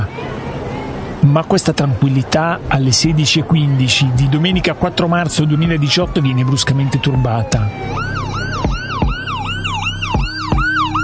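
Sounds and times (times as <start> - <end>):
low traffic rumble: 0.0 - 11.0
speech: 1.2 - 8.2
ambulance and emergency vehicle sirens wailing: 2.9 - 11.0.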